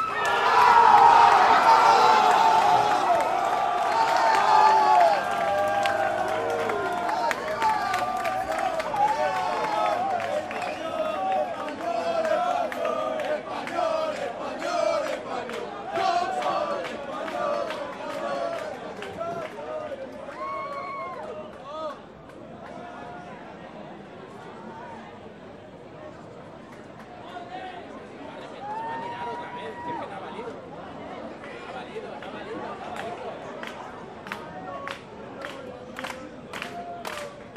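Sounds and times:
soccer fans roaring, shouting and cheering: 0.0s - 18.8s.

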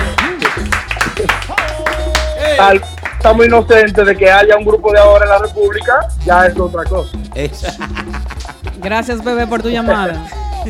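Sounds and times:
laughter: 0.0s - 2.6s, 7.5s - 8.9s
people cheering: 0.0s - 3.1s
applause: 0.0s - 3.2s
speech: 2.6s - 8.2s, 8.8s - 10.6s.

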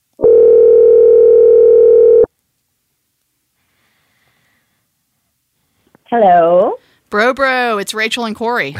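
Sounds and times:
electronic phone ringing tone from a call to a friend: 0.2s - 2.3s
speech: 6.1s - 8.7s.

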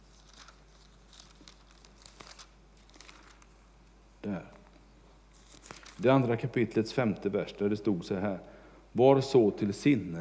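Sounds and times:
book pages flipping: 0.0s - 3.6s, 4.5s - 6.1s
speech: 4.3s - 4.5s, 6.0s - 10.1s.

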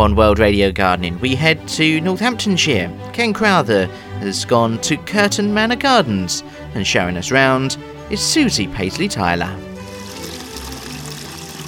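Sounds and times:
speech: 0.0s - 9.7s
water pouring and splashing in a garden water feature in Northamptonshire: 9.8s - 11.6s.

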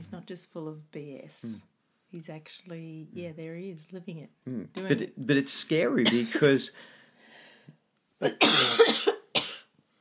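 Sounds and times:
speech: 0.0s - 7.0s, 8.2s - 9.2s
person coughing: 6.1s - 6.5s, 8.2s - 9.7s.

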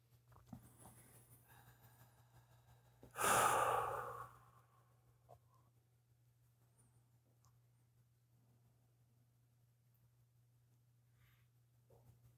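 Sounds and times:
deep breath in and out as a long breathy sigh: 3.1s - 4.8s.

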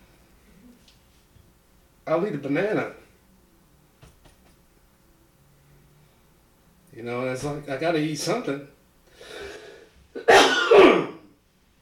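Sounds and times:
speech: 2.1s - 3.0s, 7.0s - 9.3s
soft breathy intake: 9.1s - 10.0s
person coughing harshly: 10.2s - 11.3s.

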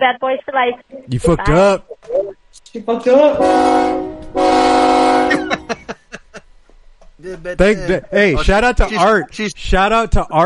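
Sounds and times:
speech: 0.0s - 4.0s, 7.2s - 10.4s
train horn blowing: 3.3s - 5.5s
laughter: 5.3s - 6.4s.

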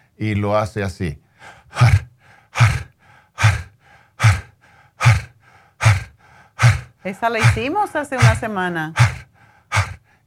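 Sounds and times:
speech: 0.2s - 2.0s, 7.0s - 9.1s
soft inhales in a rhythmic breathing exercise: 1.3s - 7.1s, 9.0s - 10.2s
forceful breathy exhales in a rhythmic breathing exercise: 1.4s - 10.2s.

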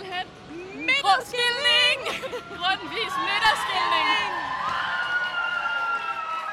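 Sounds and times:
speech: 1.2s - 4.3s
crowd cheering after election result announced: 1.3s - 6.5s.

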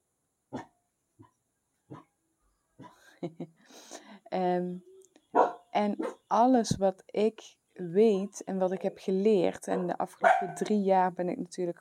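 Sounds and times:
speech: 3.2s - 4.9s, 5.8s - 11.7s
dog keeping watch barking sharply: 5.3s - 6.2s, 10.2s - 10.6s.

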